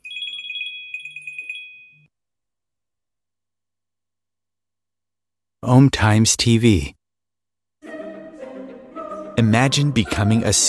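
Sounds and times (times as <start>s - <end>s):
telephone ringing with electronic warbling trill: 0.0s - 2.1s
speech: 5.6s - 7.0s, 9.4s - 10.6s.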